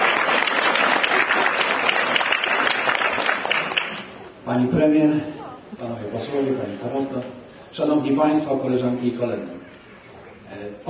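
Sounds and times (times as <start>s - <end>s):
sustained applause from a sizeable audience: 0.0s - 4.3s
speech: 4.5s - 9.6s, 10.6s - 10.8s.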